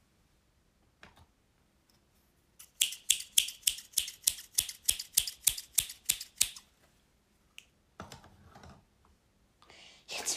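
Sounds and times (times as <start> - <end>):
scissors snipping: 2.6 - 6.6.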